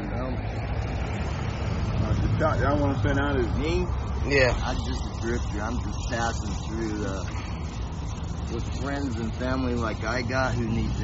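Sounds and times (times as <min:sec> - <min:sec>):
big truck rumbling past with engine and road noise: 0:00.3 - 0:11.0
speech: 0:02.4 - 0:07.5, 0:08.5 - 0:11.0.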